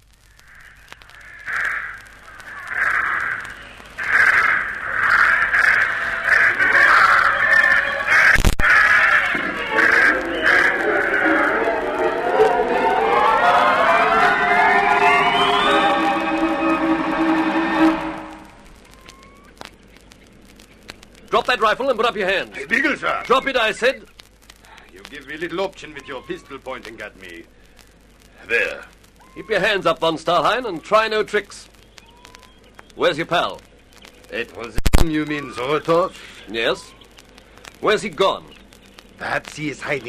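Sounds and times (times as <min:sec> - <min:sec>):
flock of birds cawing harshly after release: 0:00.2 - 0:40.0
rising whistle-like tone: 0:09.7 - 0:19.4
speech: 0:21.6 - 0:24.1, 0:25.3 - 0:27.6, 0:28.5 - 0:28.8, 0:29.4 - 0:31.6, 0:33.0 - 0:33.7, 0:34.3 - 0:36.9, 0:37.8 - 0:38.5, 0:39.2 - 0:40.0.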